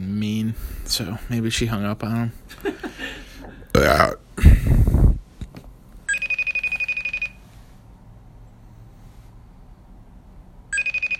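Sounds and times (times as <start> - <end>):
speech: 0.5 - 2.8, 3.8 - 5.0
electronic ringback tone of a phone call ringing out: 6.1 - 7.4, 10.7 - 11.1.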